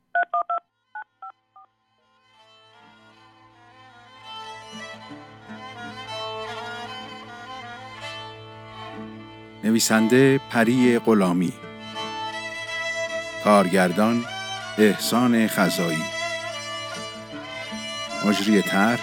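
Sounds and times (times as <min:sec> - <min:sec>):
telephone keypad tones of a number being dialed: 0:00.2 - 0:01.1
sustained sound: 0:08.3 - 0:19.0
speech: 0:09.7 - 0:11.6, 0:13.4 - 0:16.2, 0:18.2 - 0:19.0.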